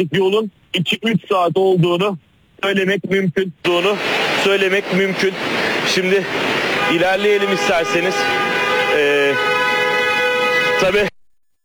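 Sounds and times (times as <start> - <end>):
speech: 0.0 - 9.5, 10.8 - 11.1
car horns honking in a traffic jam: 5.3 - 11.1.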